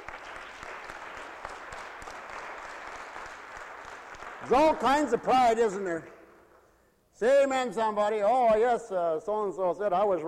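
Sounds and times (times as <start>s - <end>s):
room full of people applauding: 0.0s - 5.8s
speech: 4.4s - 6.2s, 7.2s - 10.2s.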